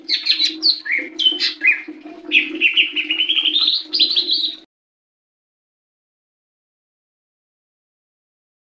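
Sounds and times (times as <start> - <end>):
leafbird singing slurred whistles sharp chips and rising trill: 0.0 - 4.6.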